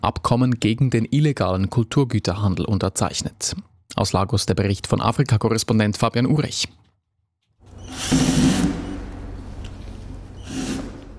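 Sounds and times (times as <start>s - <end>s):
speech: 0.0s - 6.8s, 7.9s - 8.8s
power tool removing screws from a wooden crate in an empty museum hall: 7.7s - 9.6s, 10.3s - 11.1s.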